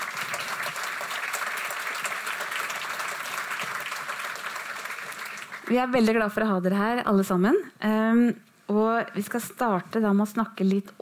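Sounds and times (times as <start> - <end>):
audience applauding a panel of guests: 0.0 - 5.8
speech: 5.7 - 10.9.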